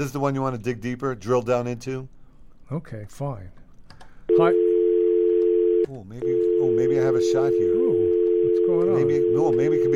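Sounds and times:
speech: 0.0 - 3.6, 4.4 - 4.6, 5.8 - 7.9, 8.7 - 9.9
telephone dial tone from a malfunctioning phone bank: 4.3 - 9.9.

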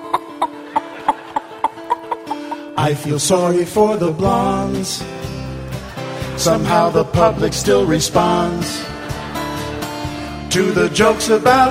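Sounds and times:
laughter: 0.0 - 2.7, 5.4 - 11.0
chickens clucking: 0.0 - 2.8
speech: 2.8 - 5.3, 6.4 - 9.0, 10.5 - 11.6.

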